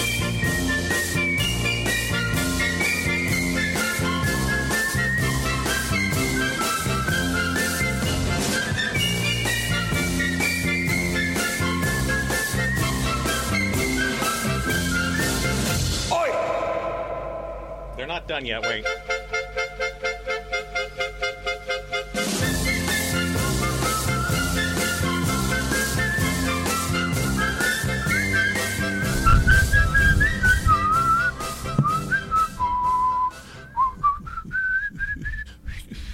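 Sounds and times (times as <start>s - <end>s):
bright whistled novelty song melody: 0.0s - 16.0s, 18.9s - 36.0s
brisk band accompaniment with steady rhythmic chords: 0.0s - 19.8s, 20.5s - 33.6s
speech: 18.4s - 19.1s.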